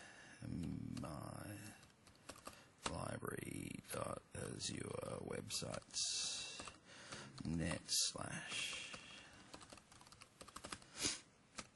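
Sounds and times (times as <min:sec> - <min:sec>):
speech: 0:00.5 - 0:01.8, 0:03.2 - 0:06.4, 0:07.4 - 0:08.9
faint quick typing on a computer keyboard: 0:00.9 - 0:03.0, 0:06.5 - 0:07.5, 0:08.6 - 0:10.9, 0:11.5 - 0:11.7.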